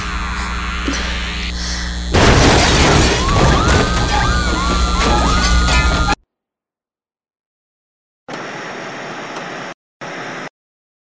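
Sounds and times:
steady hum: 0.0s - 6.2s
loud explosion in a science lab: 2.1s - 4.4s.

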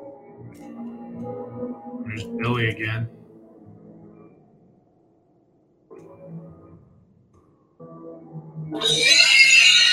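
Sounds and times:
speech: 1.8s - 3.2s
prop pig with a saw squealing at a haunted house attraction: 8.8s - 9.9s.

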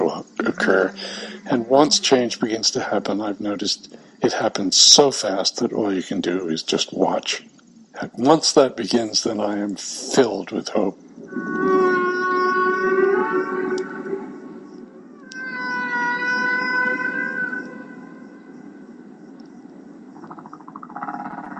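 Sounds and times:
humpback whale song: 0.0s - 3.1s, 11.1s - 19.4s
speech: 0.6s - 11.0s.

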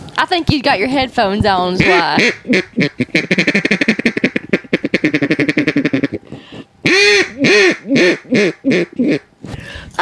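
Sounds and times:
speech: 0.2s - 3.9s
duck call from Mississippi being blown: 1.8s - 6.2s, 6.8s - 9.3s.

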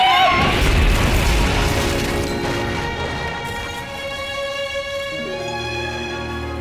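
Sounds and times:
asbestos roof smashing and shattering into pieces: 0.2s - 5.2s
clattering debris: 0.3s - 6.5s.

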